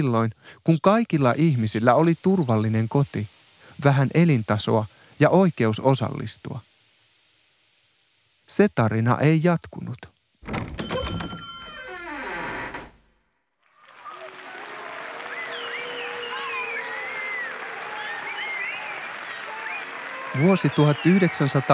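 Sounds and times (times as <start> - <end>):
speech: 0.0 - 6.7, 8.5 - 10.7, 20.4 - 21.7
large crowd of young people shouting and screaming: 13.8 - 21.7.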